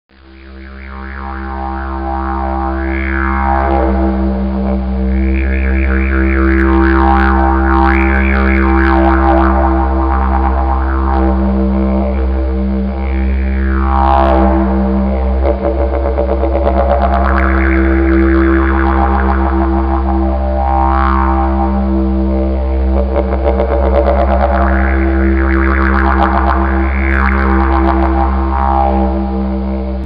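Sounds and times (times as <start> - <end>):
didgeridoo harmonics: 0.1 - 30.0.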